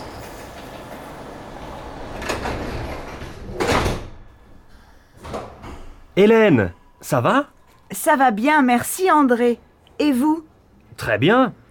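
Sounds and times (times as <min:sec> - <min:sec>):
metro train doors sliding open and shut: 0:00.0 - 0:06.2
speech: 0:06.2 - 0:11.6.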